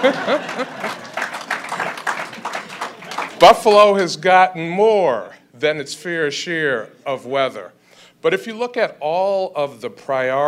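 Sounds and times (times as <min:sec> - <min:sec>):
speech: 0:00.0 - 0:01.1, 0:03.4 - 0:10.4
light laughter: 0:00.0 - 0:01.2
room full of people applauding: 0:00.0 - 0:03.6.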